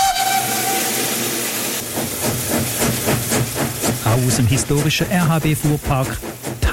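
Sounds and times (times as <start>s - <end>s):
oil-fired historic steam locomotive whistle: 0.0s - 1.7s
oil-fired steam locomotive chuffing pulling a festival train: 0.0s - 6.7s
oil-fired steam locomotive hissing steam: 0.0s - 6.7s
speech: 4.2s - 6.7s.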